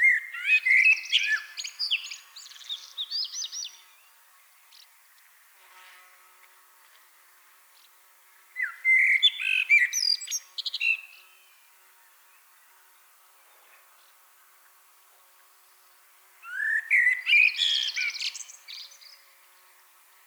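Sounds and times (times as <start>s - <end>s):
common blackbird singing: 0.0s - 4.0s, 8.6s - 11.3s, 16.4s - 19.3s.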